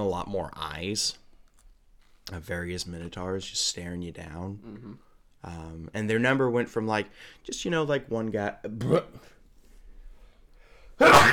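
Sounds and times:
speech: 0:00.0 - 0:01.2, 0:02.3 - 0:09.4
burp and sneeze together: 0:08.8 - 0:09.2, 0:11.0 - 0:11.3.

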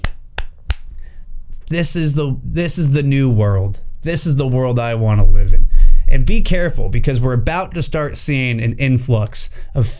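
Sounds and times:
slow clapping: 0:00.0 - 0:00.9
speech: 0:01.7 - 0:09.9.

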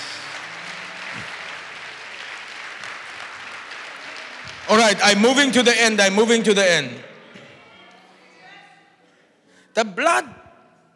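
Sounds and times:
congregation clapping: 0:00.0 - 0:06.2
speech: 0:04.8 - 0:07.1, 0:09.8 - 0:10.4.

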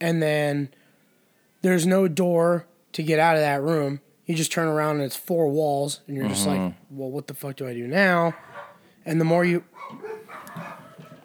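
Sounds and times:
speech: 0:00.0 - 0:00.8, 0:01.6 - 0:11.2
dogs barking and yipping: 0:08.1 - 0:09.0, 0:09.6 - 0:11.2.

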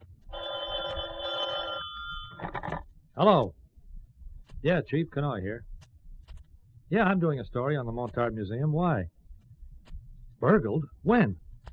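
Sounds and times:
telephone ringing with electronic trill: 0:00.3 - 0:02.8
speech: 0:03.2 - 0:03.6, 0:04.6 - 0:05.7, 0:06.9 - 0:09.2, 0:10.4 - 0:11.4.

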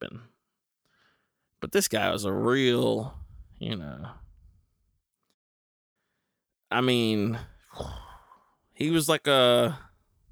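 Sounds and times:
speech: 0:01.6 - 0:04.2, 0:06.7 - 0:08.0, 0:08.8 - 0:09.9
man breathing heavily: 0:07.4 - 0:08.4.

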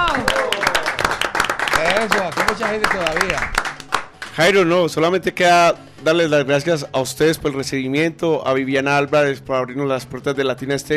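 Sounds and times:
crowd applause: 0:00.0 - 0:04.4
speech: 0:02.0 - 0:03.6, 0:04.4 - 0:10.9.

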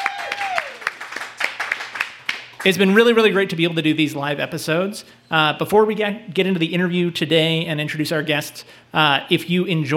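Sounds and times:
audience applause with loose uneven claps: 0:00.0 - 0:02.4
speech: 0:02.6 - 0:09.9.

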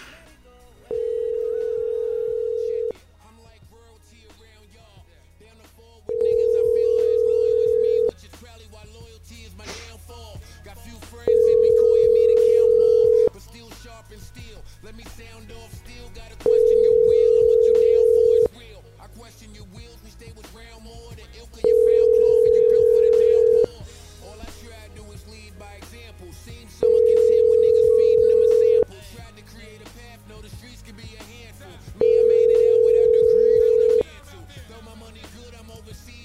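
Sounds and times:
telephone line ringing tone while a call is placed: 0:00.9 - 0:03.0, 0:06.1 - 0:08.1, 0:11.3 - 0:13.3, 0:16.4 - 0:18.5, 0:21.6 - 0:23.7, 0:26.8 - 0:28.9, 0:32.0 - 0:34.0.

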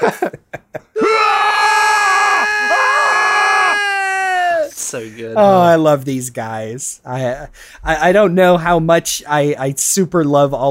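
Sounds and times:
laughter: 0:00.0 - 0:01.2
speech: 0:00.0 - 0:01.2, 0:04.9 - 0:10.6
video game character shrieking in pain while being stabbed: 0:01.0 - 0:04.8.

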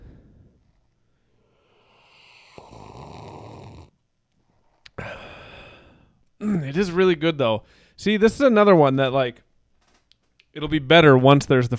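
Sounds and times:
loud slurping sips from a drink: 0:01.6 - 0:03.9
speech: 0:06.4 - 0:09.4, 0:10.6 - 0:11.7.

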